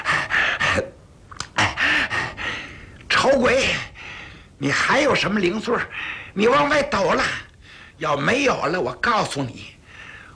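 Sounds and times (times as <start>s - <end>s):
person imitating heavy rapid panting breaths: 0.0s - 2.8s
speech: 4.6s - 9.8s.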